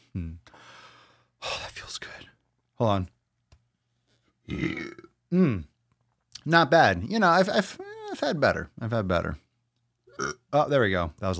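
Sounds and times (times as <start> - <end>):
speech: 1.9 - 3.2, 4.5 - 5.7, 6.4 - 9.4, 10.2 - 11.3
person belching after drinking water: 4.5 - 5.7, 10.1 - 10.5.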